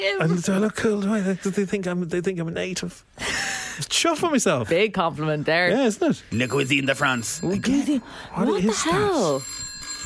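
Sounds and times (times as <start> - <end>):
speech: 0.0 - 9.6
dusty antique retro telephone bell ringing: 6.3 - 10.0.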